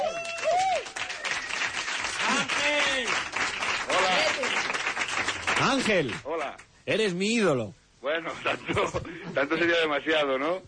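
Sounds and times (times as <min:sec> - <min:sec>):
people shouting and cheering: 0:00.0 - 0:01.2
audience applause welcoming a guest: 0:00.0 - 0:06.2
speech: 0:05.8 - 0:10.6.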